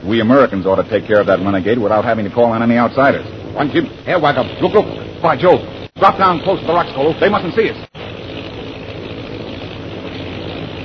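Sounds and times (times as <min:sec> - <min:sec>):
propeller plane engines of bomber planes droning overhead: 0:00.0 - 0:10.8
speech: 0:00.1 - 0:07.9.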